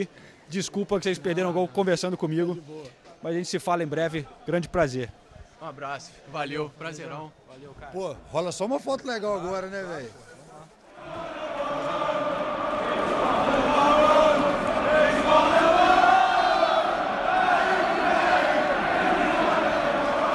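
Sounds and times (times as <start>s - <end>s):
speech: 0.0s - 10.3s
football fans in a large stadium chanting a song for a striker: 10.9s - 20.3s.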